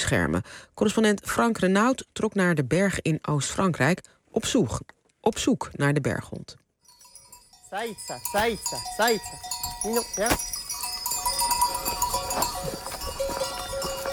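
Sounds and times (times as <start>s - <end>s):
speech: 0.1s - 6.6s, 7.7s - 10.6s
sheep bells clanking on a flock climbing a mountain: 6.9s - 14.1s
sheep hoof clatter: 6.9s - 14.1s
sheep bleating while climbing a mountain in eastern France: 11.1s - 14.1s.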